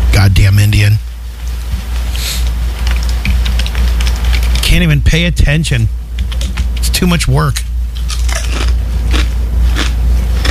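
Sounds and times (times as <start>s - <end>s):
steady low hum: 0.0s - 10.4s
speech: 0.2s - 1.1s, 4.7s - 6.0s, 7.0s - 7.6s
man chewing loudly with wet crunchy bites during a live broadcast: 2.2s - 4.6s, 8.0s - 10.4s.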